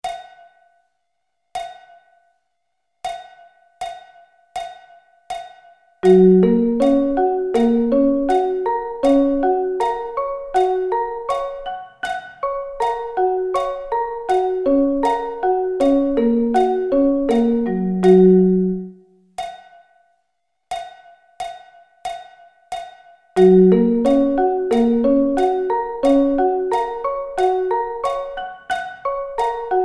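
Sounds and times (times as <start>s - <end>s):
Gb arpeggio inversions: 6.0s - 19.0s, 23.4s - 29.8s.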